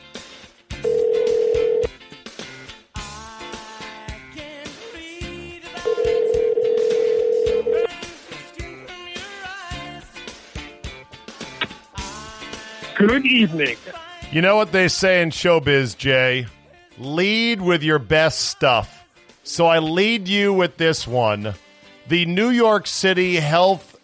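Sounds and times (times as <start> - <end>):
busy music-like sound: 0.0 - 24.0
phone ringback tones on a line: 0.8 - 1.9, 5.9 - 8.0
speech: 13.2 - 23.9.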